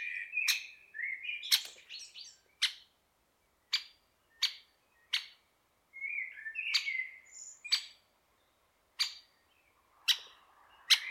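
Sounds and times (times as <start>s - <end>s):
great spotted woodpecker uttering hard abrupt kix notes: 0.0s - 3.0s, 3.7s - 5.4s, 6.3s - 8.0s, 9.0s - 9.3s, 10.0s - 11.0s
other small birds chirping and warbling short phrases: 0.0s - 11.0s.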